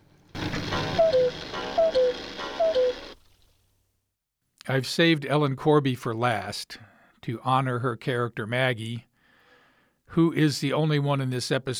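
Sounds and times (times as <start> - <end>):
cuckoo clock two-note descending cuckoo call: 0.4 - 3.3
speech: 4.7 - 9.1, 10.1 - 11.7.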